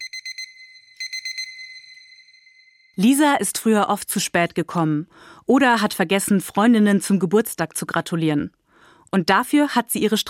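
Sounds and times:
alarm clock with high thin electronic beeps: 0.0 - 3.0
speech: 3.0 - 10.2.

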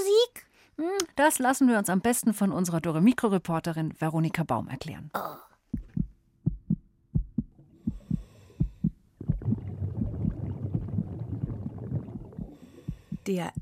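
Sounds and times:
speech: 0.8 - 5.8, 13.3 - 13.6
heartbeat as heard inside the womb: 5.6 - 13.6
stomach gurgling as heard inside the womb: 7.4 - 13.6.

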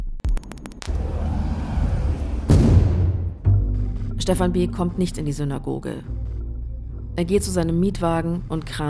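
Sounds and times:
homemade bomb explosion with sharp cracks and rolling rumble: 0.9 - 3.5
second loud blast: 0.9 - 3.6
speech: 4.2 - 6.4, 7.2 - 8.8.

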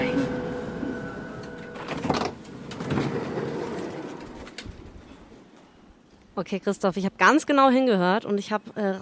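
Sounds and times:
high thin whine on a train station platform: 0.0 - 2.7
steady rumble on a train station platform: 0.0 - 5.6
speech: 6.4 - 9.0.

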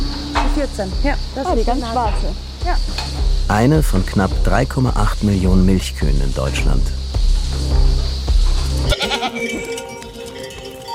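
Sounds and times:
speech: 0.6 - 8.2, 8.8 - 9.8
large goat bleating on an organic dairy farm: 8.9 - 9.8.

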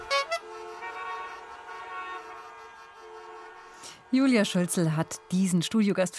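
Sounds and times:
short bright horn honks: 0.0 - 4.1
sustained steady horn tone: 0.0 - 6.1
speech: 4.1 - 6.1.

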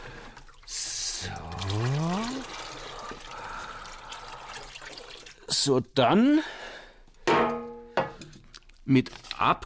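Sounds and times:
malt extract poured into plastic fermenting bucket: 0.0 - 5.6
soft steady splashing and trickling of malt extract: 0.0 - 5.6
speech: 1.2 - 2.2, 5.6 - 6.6, 8.9 - 9.6.

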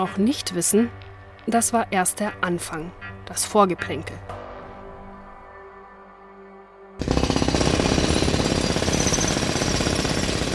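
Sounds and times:
speech: 0.0 - 4.4
jackhammer or heavy drill pounding at a construction site: 7.0 - 10.5.

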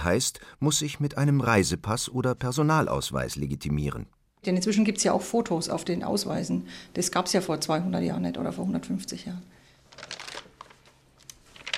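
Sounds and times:
speech: 0.0 - 10.2
pages of an old birth register being leafed through: 9.9 - 11.7.

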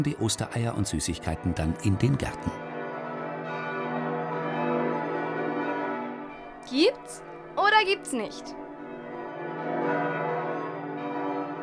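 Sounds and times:
speech: 0.0 - 2.7, 6.7 - 8.6
church bells ringing in a full continuous peal: 0.0 - 11.6.

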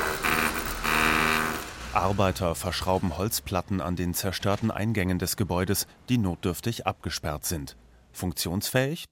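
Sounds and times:
traffic rumbling along a street in Hong Kong: 0.1 - 3.6
speech: 2.0 - 9.0.

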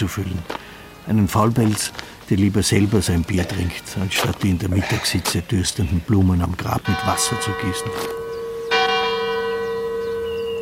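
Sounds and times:
speech: 0.0 - 8.2
church bell ringing: 6.8 - 10.6.

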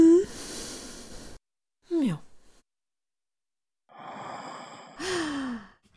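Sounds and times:
breathy human sighs ending in moans: 0.0 - 0.8, 3.9 - 5.8
single brief spoken word: 1.9 - 2.3.

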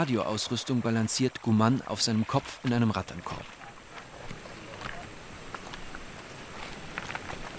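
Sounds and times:
speech: 0.0 - 3.6
footsteps crunching up a narrow footpath from a riverbank to a hilltop: 3.9 - 7.5.

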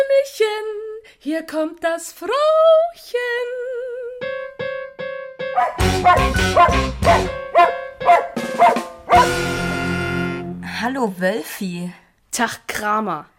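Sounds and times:
speech: 0.1 - 4.3, 5.6 - 7.8, 10.8 - 13.3
small dog yelping and barking: 5.6 - 9.4.

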